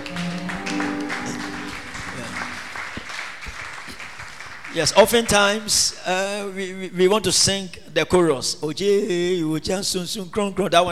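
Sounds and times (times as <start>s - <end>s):
sustained musical tones: 0.0s - 3.0s
audience clapping as an offering after prayer: 0.0s - 5.8s
speech: 4.8s - 10.9s.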